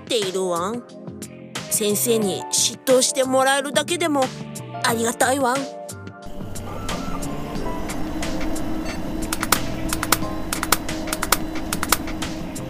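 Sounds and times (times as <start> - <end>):
speech: 0.1 - 5.9
failing hard disk drive whirring with a low hum: 6.2 - 12.6.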